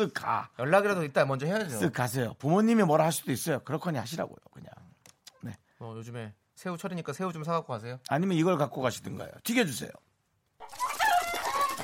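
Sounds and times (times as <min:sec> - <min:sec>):
speech: 0:00.0 - 0:04.7, 0:05.4 - 0:10.1
rooster crowing: 0:10.7 - 0:11.8.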